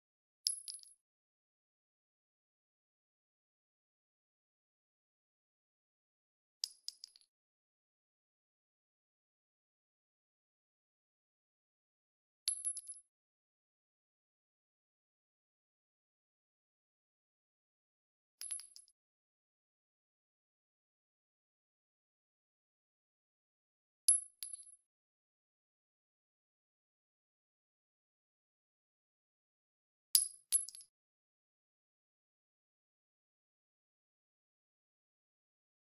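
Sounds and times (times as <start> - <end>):
9mm shell casing dropping on concrete: 0.5 - 1.0, 12.5 - 13.0, 18.4 - 18.9, 24.1 - 24.7, 30.2 - 30.8.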